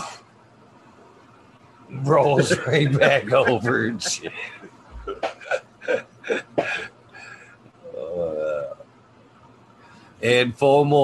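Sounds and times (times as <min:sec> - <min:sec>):
hiss: 0:00.0 - 0:11.0
speech: 0:01.9 - 0:04.8, 0:10.2 - 0:11.0
laughter: 0:02.2 - 0:06.8
person imitating a cough: 0:05.1 - 0:06.9.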